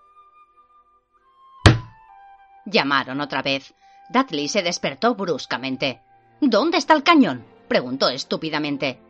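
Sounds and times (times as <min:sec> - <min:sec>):
heavy booming knock on a wooden door: 0:01.7 - 0:02.0
speech: 0:02.7 - 0:09.0.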